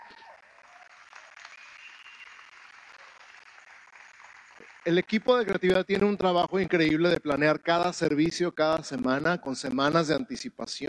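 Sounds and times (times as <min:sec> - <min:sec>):
church audience applauding: 0:00.0 - 0:08.0
speech: 0:04.8 - 0:10.8.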